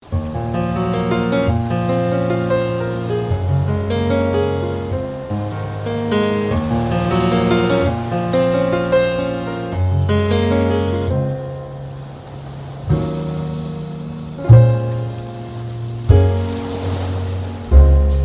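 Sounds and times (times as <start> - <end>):
electronica piano: 0.0 - 18.2.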